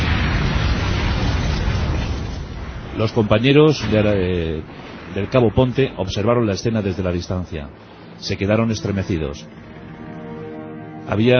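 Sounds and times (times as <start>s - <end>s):
magnetic mine exploding on the tracks of a T-34 tank: 0.0s - 8.4s
speech: 3.0s - 9.7s, 11.1s - 11.3s.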